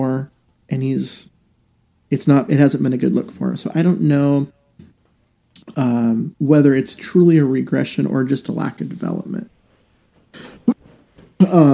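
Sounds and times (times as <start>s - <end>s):
speech: 0.0s - 1.3s, 2.1s - 4.6s, 5.7s - 9.6s, 11.4s - 11.7s
person breathing: 10.3s - 10.8s
person clearing throat: 10.4s - 10.8s
person coughing: 10.4s - 10.8s.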